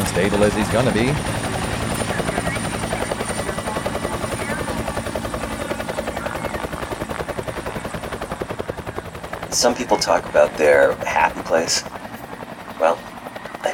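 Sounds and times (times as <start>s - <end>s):
droning helicopter engine whine: 0.0s - 11.2s
helicopter rotor thumping: 0.0s - 13.7s
speech: 0.2s - 1.5s, 9.6s - 11.9s.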